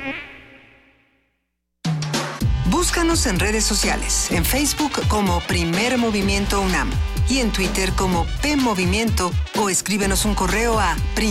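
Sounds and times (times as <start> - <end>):
mosquito buzzing: 0.0 - 1.4
speech: 2.8 - 11.2.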